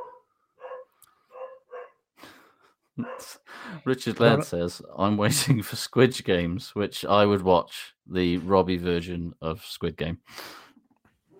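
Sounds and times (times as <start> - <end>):
dog barking: 0.0 - 2.0, 3.0 - 3.4
speech: 3.0 - 10.6.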